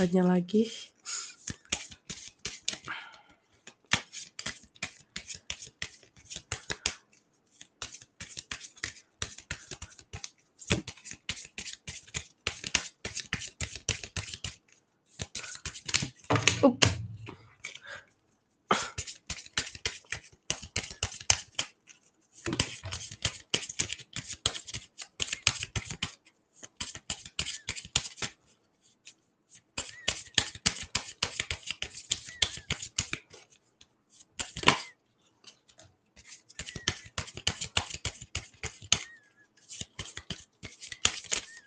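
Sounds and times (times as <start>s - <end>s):
speech: 0.0s - 1.3s, 16.6s - 16.9s
tarot cards being shuffled: 1.3s - 2.9s, 3.5s - 17.9s, 19.0s - 41.6s.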